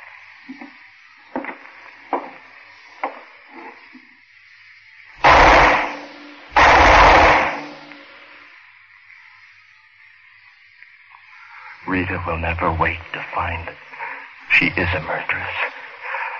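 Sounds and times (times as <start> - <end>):
gunshots from a gun: 5.2 - 7.9
speech: 11.9 - 13.9, 14.5 - 15.7.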